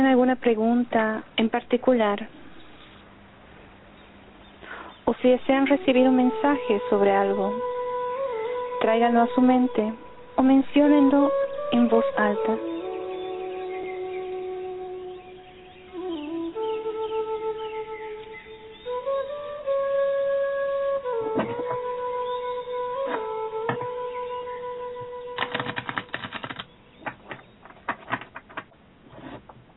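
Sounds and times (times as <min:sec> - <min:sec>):
speech: 0:00.0 - 0:02.5, 0:05.1 - 0:07.8, 0:08.8 - 0:12.7
steady sustained tone: 0:05.2 - 0:25.4
cards tapping during a card reading: 0:25.4 - 0:28.7.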